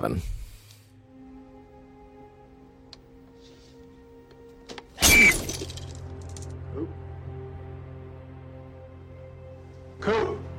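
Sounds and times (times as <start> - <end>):
speech: 0.0 - 0.4
mirror glass shattering: 5.0 - 6.4.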